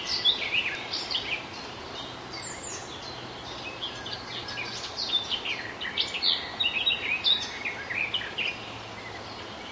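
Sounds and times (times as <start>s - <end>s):
garden warbler singing at Zakole Wawerskie, Poland: 0.0s - 9.6s.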